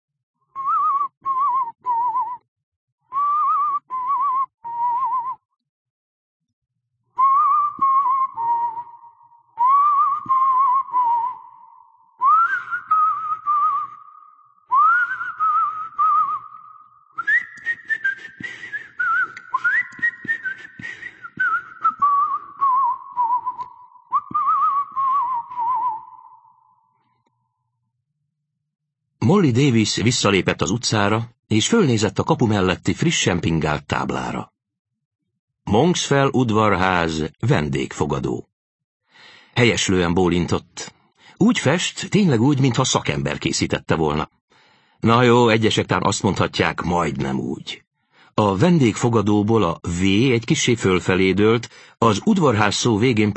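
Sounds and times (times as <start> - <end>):
man softly whistling a simple nursery-rhyme tune: 0.5 - 2.4, 3.1 - 5.6, 7.1 - 27.2
speech: 29.3 - 34.5, 35.7 - 38.5, 39.6 - 44.4, 45.0 - 47.8, 48.4 - 53.3.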